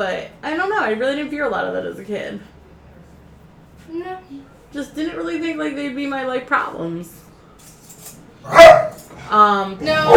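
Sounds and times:
speech: 0.0s - 2.6s, 3.9s - 7.2s, 8.4s - 10.1s
puppy barking: 8.4s - 9.1s, 9.9s - 10.1s.

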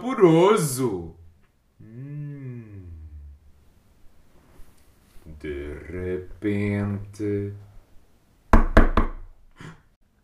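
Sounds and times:
speech: 0.0s - 1.2s, 5.4s - 7.6s
knocking on a wooden door: 8.5s - 9.3s.

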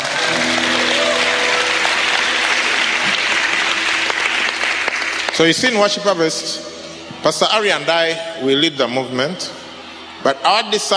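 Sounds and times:
audience applause: 0.0s - 6.1s
speech: 5.4s - 9.6s, 10.2s - 10.9s.

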